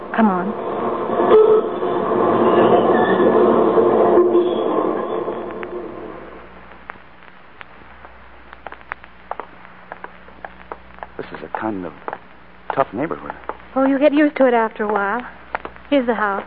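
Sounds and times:
subway train rumbling and roaring past: 0.0s - 6.5s
speech: 0.2s - 1.4s, 12.9s - 16.4s.

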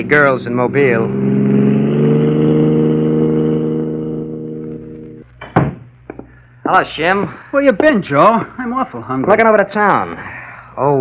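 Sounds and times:
speech: 0.0s - 1.6s, 6.7s - 10.9s
car engine revving and driving away: 0.0s - 5.3s
sharp knock: 5.4s - 6.3s.

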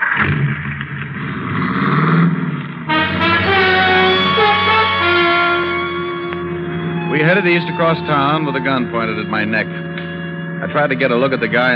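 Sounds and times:
car engine roaring as the car starts to drive off: 0.0s - 11.7s
speech: 7.3s - 9.9s, 10.6s - 11.7s.

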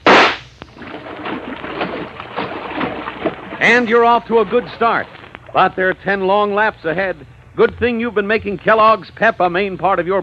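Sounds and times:
starting gun fired at an indoor swimming race: 0.0s - 0.5s
speech: 3.6s - 10.2s.

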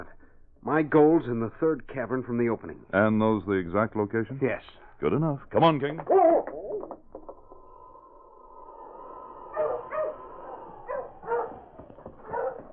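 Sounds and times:
speech: 0.0s - 6.4s
steady high whine or tone: 6.5s - 12.7s
dog barking: 9.5s - 12.7s.

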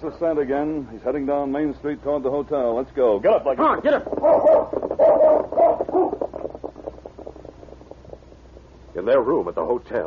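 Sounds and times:
speech: 0.0s - 6.3s, 9.1s - 10.0s
dog barking: 4.2s - 6.2s.

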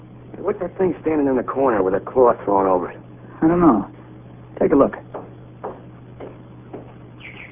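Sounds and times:
steady low hum: 0.0s - 7.5s
speech: 0.5s - 4.0s, 4.6s - 5.1s
canary chirping: 7.2s - 7.5s.

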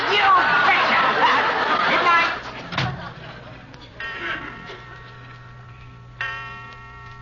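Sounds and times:
laughter: 0.0s - 5.3s
low steady hum: 1.5s - 7.2s
clock striking in slow resonant chimes: 3.9s - 7.2s.

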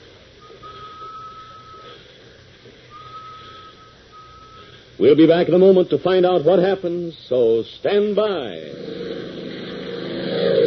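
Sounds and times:
constant hissy noise: 0.0s - 10.6s
whistle blasts: 0.4s - 2.0s, 2.9s - 4.8s
speech: 5.0s - 8.9s.

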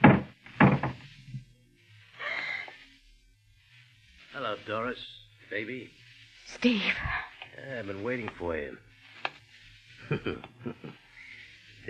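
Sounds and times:
heavy garage door clunks: 0.0s - 1.0s
speech: 4.4s - 8.9s, 10.1s - 11.0s
laughter: 10.0s - 11.8s.

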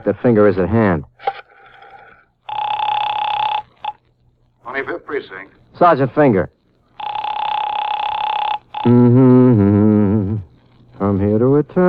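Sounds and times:
speech: 0.0s - 1.1s, 4.8s - 6.6s, 8.8s - 9.4s, 11.1s - 11.8s
telephone bell ringing: 2.5s - 4.0s, 7.0s - 8.9s.

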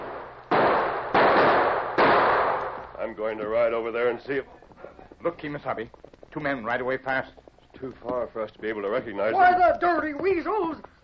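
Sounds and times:
gunshots from a gully: 0.0s - 3.0s
speech: 3.1s - 4.6s, 5.2s - 11.0s.

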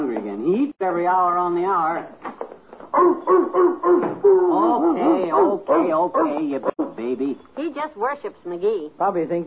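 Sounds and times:
speech: 0.8s - 2.2s, 3.0s - 9.4s
dog barking to be let in: 2.9s - 7.0s.

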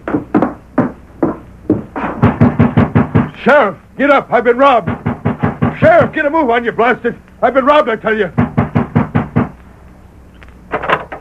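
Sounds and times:
man pounding on the wooden front door of a home at night: 0.0s - 3.4s, 4.6s - 6.2s, 8.3s - 9.6s
speech: 3.4s - 5.0s, 5.8s - 8.4s.

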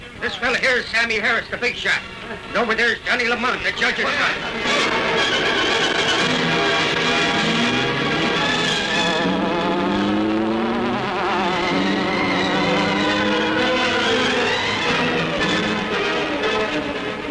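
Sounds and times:
speech: 0.3s - 5.7s
getaway car speeding off: 4.3s - 17.3s
loud continuous buzzing hum with swooping pitch: 4.4s - 17.3s.

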